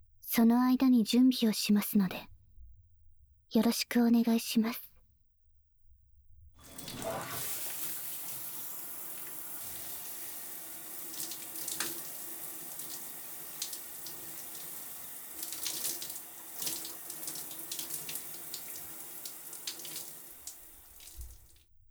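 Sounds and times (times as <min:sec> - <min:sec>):
speech: 0:00.4 - 0:02.3, 0:03.5 - 0:04.9
shower water running: 0:06.6 - 0:21.6.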